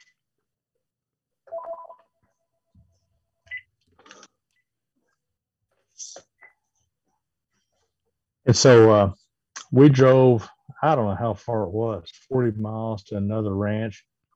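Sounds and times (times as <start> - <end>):
short electronic beeps from a phone being switched off: 1.5 - 2.1
speech: 8.5 - 14.1.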